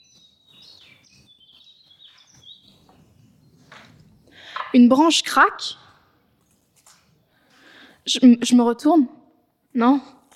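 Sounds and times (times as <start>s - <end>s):
birds singing and chirping in a forest: 0.0s - 4.6s
soft steady outdoor ambience: 0.0s - 10.3s
speech: 4.7s - 5.8s, 8.1s - 9.2s, 9.8s - 10.2s.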